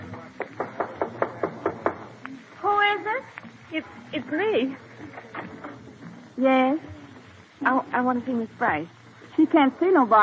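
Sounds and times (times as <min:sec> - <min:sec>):
sharp knocks on a dressing room door: 0:00.4 - 0:02.1
speech: 0:03.1 - 0:05.6, 0:06.4 - 0:07.0, 0:07.6 - 0:10.2.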